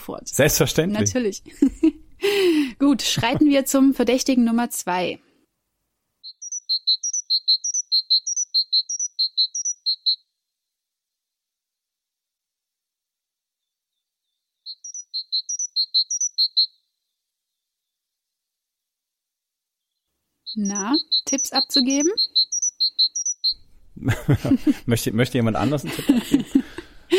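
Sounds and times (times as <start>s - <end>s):
speech: 0.0s - 5.3s, 20.6s - 22.4s, 24.0s - 27.1s
great tit singing bright high two-note phrases: 0.5s - 1.6s, 6.2s - 10.2s, 14.2s - 16.8s, 19.8s - 26.8s
laughter: 1.5s - 3.6s, 24.0s - 27.1s.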